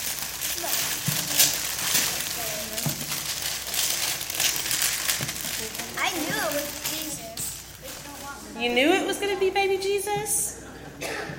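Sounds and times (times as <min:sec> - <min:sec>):
paper crumpling and rustling being put into a box: 0:00.0 - 0:08.5
speech: 0:08.6 - 0:11.3.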